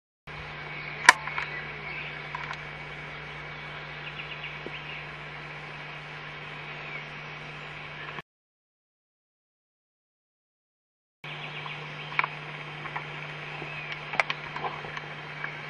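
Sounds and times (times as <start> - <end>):
calls: 0.4 - 8.2, 11.3 - 15.6.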